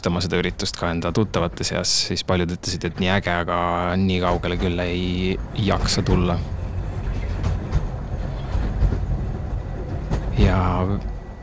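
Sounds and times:
speech: 0.0 - 6.6, 10.4 - 11.1
train rolling along the rails: 0.0 - 11.4
train wheels clacking and knocking: 0.0 - 11.4.

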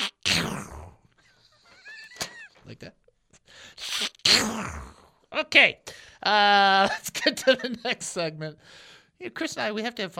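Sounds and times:
voice imitating a cartoon duck sneezing: 0.0 - 1.0, 3.8 - 5.2
speech: 2.7 - 10.1.

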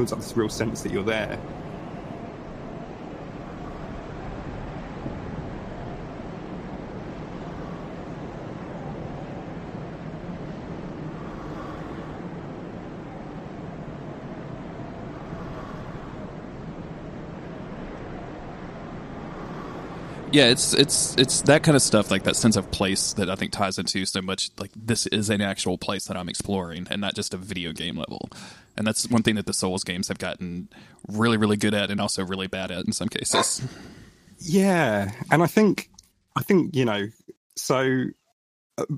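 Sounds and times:
speech: 0.0 - 1.7, 20.3 - 38.2, 38.8 - 38.9
dense roar of falling waterfalls in a video game soundscape: 20.0 - 24.1.

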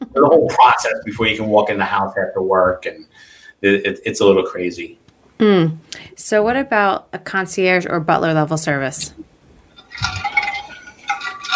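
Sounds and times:
speech: 0.2 - 9.3
water sloshing in a glass: 9.7 - 11.5
glass clinking: 9.8 - 11.5.

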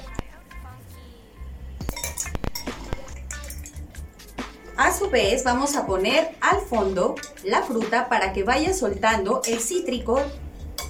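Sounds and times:
ice cubes clinking into a glass for a tequila drink: 1.9 - 3.9
speech: 4.8 - 10.4.

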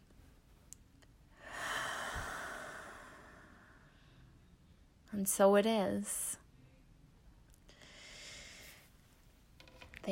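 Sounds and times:
slow deep breath during a guided relaxation: 1.3 - 4.4, 7.7 - 8.9
speech: 5.2 - 6.4.

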